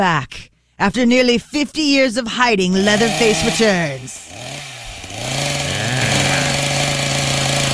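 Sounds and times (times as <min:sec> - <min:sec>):
speech: 0:00.0 - 0:04.6
chainsaw revving: 0:02.8 - 0:07.7.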